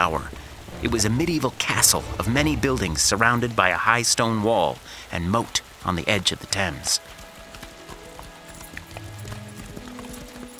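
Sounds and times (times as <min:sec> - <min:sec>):
low rumble: 0:00.0 - 0:04.4
several horses galloping toward a drawbridge: 0:00.0 - 0:10.5
speech: 0:00.8 - 0:07.2.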